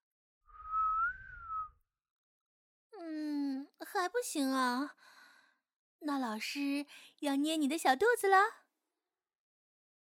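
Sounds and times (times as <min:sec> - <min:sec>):
person whistling a steady slightly wavering note: 0:00.5 - 0:01.8
speech: 0:04.0 - 0:05.2, 0:06.0 - 0:08.6.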